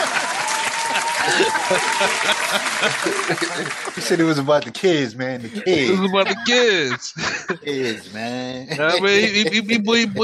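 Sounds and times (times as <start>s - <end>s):
cheers: 0.0s - 4.2s
people chuckling: 0.0s - 4.4s, 5.4s - 10.2s
crowd clapping: 0.0s - 4.7s
speech: 1.2s - 10.2s.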